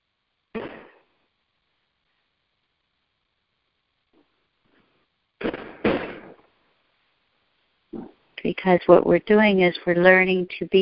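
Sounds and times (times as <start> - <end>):
faint crackles of fireworks: 0.5 - 8.5
fireworks exploding: 5.4 - 6.4
speech: 8.4 - 10.8.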